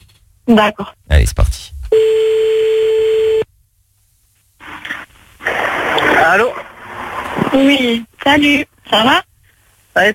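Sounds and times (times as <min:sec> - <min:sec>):
speech: 0:00.5 - 0:02.4, 0:06.3 - 0:06.7, 0:07.5 - 0:09.3, 0:10.0 - 0:10.1
telephone ringback tone: 0:01.9 - 0:03.4
burst of noise: 0:05.4 - 0:07.8.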